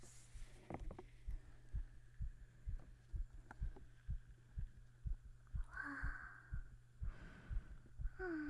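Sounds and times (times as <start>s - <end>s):
low hum: 0.0s - 8.4s
rapid heartbeat heard through a stethoscope: 1.2s - 8.4s.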